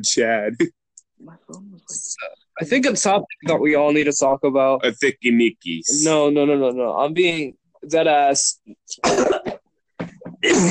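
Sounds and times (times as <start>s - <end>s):
speech: 0.0s - 9.4s, 10.4s - 10.7s
loud coughs: 8.9s - 9.7s, 10.3s - 10.7s.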